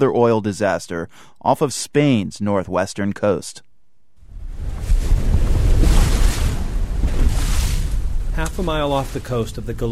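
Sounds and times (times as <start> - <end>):
speech: 0.0 - 3.7, 8.4 - 9.9
Atlantic waves pounding a rocky shoal: 4.2 - 9.7
wind gusting across the microphone: 4.2 - 9.9.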